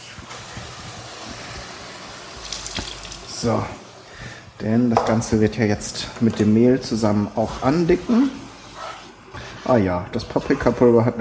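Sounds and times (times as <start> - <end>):
water poured into a cooking pan with onions, oil, paprika and milk: 0.0 - 4.0
speech: 3.4 - 3.8, 4.6 - 8.4, 9.6 - 11.1.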